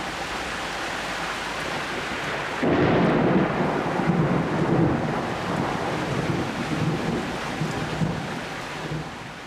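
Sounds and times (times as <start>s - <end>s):
steady heavy rain: 0.0s - 9.4s
deep rolling thunder of a heavy summer thunderstorm: 2.6s - 9.3s.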